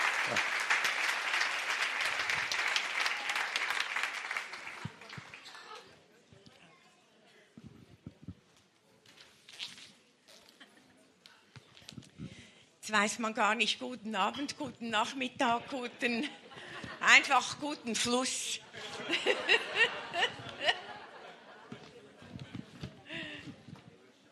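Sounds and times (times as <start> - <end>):
conference audience applause: 0.0 - 5.8
speech: 0.3 - 0.5, 12.9 - 16.4, 17.1 - 20.0
laughter: 15.6 - 17.1, 18.7 - 23.3.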